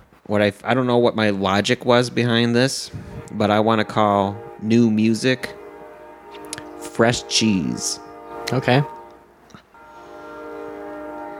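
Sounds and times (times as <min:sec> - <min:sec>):
speech: 0:00.3 - 0:05.6, 0:07.0 - 0:09.0
train horn blast: 0:02.4 - 0:11.3.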